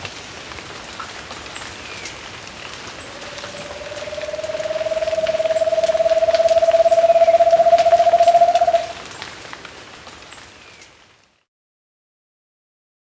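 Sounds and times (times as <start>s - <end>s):
Undulated Antpitta deep quavering pulsed hoot in Ecuador: 2.9s - 9.0s.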